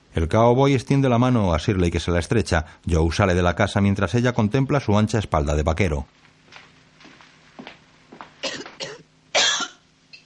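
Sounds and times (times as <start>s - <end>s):
speech: 0.2s - 6.2s
sick man coughing while sitting on a cot in a filthy hovel: 8.4s - 9.8s.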